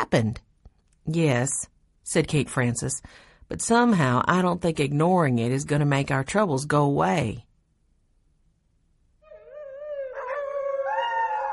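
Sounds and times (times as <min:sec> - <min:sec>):
speech: 0:00.0 - 0:00.4, 0:01.1 - 0:07.5
dog howling at night: 0:09.2 - 0:11.5.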